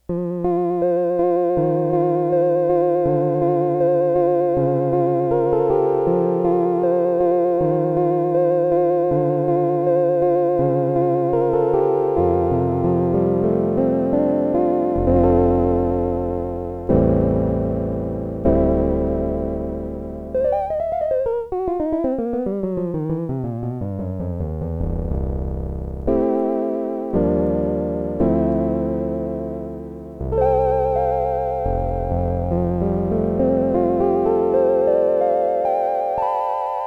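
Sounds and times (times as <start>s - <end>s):
low piano with vibrato on a Multivox MX-20: 0.0s - 36.8s.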